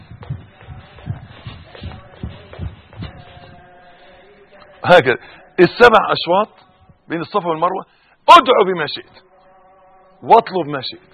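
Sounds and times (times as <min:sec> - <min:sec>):
short quick shuffling footsteps: 0:00.0 - 0:04.8
speech: 0:04.8 - 0:09.3, 0:10.2 - 0:11.1.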